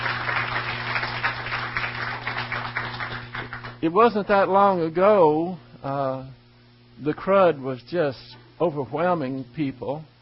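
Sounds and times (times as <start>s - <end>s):
crowd applauding: 0.0s - 3.8s
low constant hum in the room: 0.0s - 10.2s
speech: 3.8s - 6.4s, 7.0s - 10.1s.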